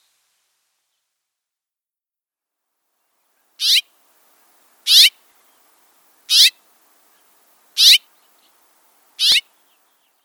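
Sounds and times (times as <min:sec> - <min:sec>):
House Finch warbling: 0:03.6 - 0:03.9, 0:04.9 - 0:05.1, 0:06.3 - 0:06.6, 0:07.8 - 0:08.1, 0:09.2 - 0:09.5.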